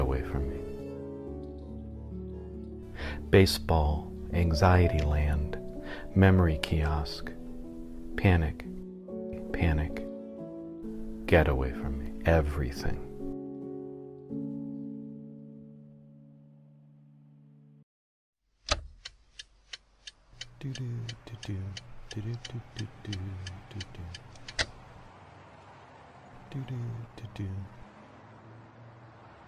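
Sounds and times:
car interior road rumble while driving: 0:00.0 - 0:13.8, 0:19.7 - 0:29.4
speech: 0:03.3 - 0:05.4, 0:06.1 - 0:07.4, 0:08.2 - 0:08.7, 0:09.6 - 0:10.0, 0:11.3 - 0:13.1, 0:20.6 - 0:24.4, 0:26.5 - 0:27.8
car turn signal clicking: 0:18.7 - 0:24.8.

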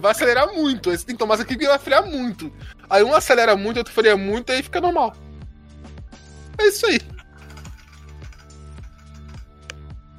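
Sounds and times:
speech: 0:00.0 - 0:05.2, 0:06.6 - 0:07.2
typing on a computer keyboard while installing a torrent program: 0:07.1 - 0:09.5.

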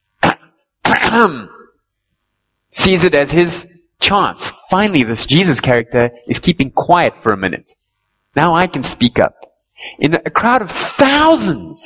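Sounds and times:
man clearing his throat: 0:00.2 - 0:01.7
speech: 0:01.1 - 0:01.6, 0:02.8 - 0:07.8, 0:08.4 - 0:11.8.

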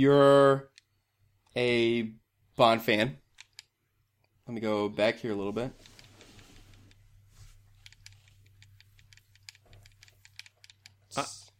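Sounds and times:
speech: 0:00.0 - 0:00.7, 0:01.6 - 0:03.2, 0:04.5 - 0:05.9, 0:11.2 - 0:11.4
PlayStation controller buttons being mashed: 0:03.2 - 0:04.4, 0:07.8 - 0:11.5.

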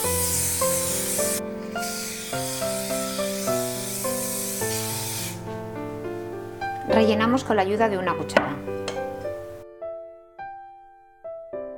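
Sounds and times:
can of cooking spray hissing onto a baking tray: 0:00.0 - 0:05.4
light music: 0:00.0 - 0:11.7
speech: 0:07.0 - 0:08.8.

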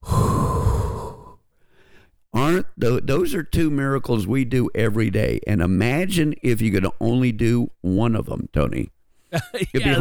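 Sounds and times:
deep exhale of breath: 0:00.0 - 0:02.2
speech: 0:02.5 - 0:09.9.

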